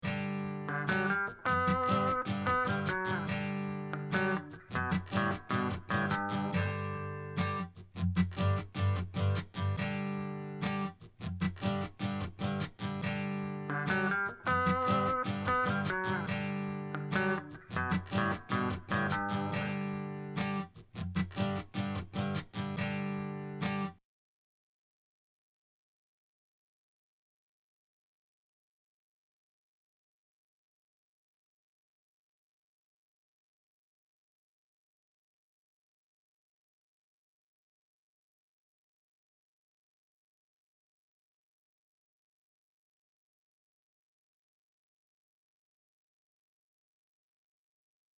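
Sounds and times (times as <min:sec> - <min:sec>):
guitar strum with lick in G major: 0:00.0 - 0:23.9.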